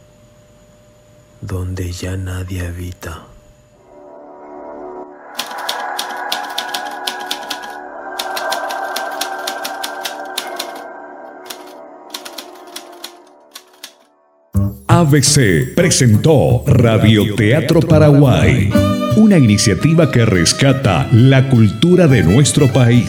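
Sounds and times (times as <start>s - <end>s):
low mechanical hum: 0.0s - 3.9s
speech: 1.4s - 3.3s, 15.0s - 23.0s
old mechanical typewriter clacking in an uninhabited building: 5.4s - 10.8s, 11.5s - 14.0s.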